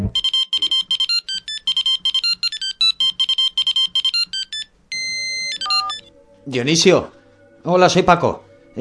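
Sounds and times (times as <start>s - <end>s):
mobile phone ringtone: 0.1s - 6.1s
speech: 6.5s - 8.8s.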